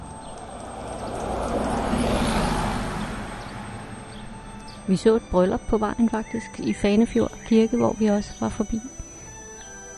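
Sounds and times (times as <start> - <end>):
bus driving past: 0.0 - 6.3
speech: 4.9 - 9.1.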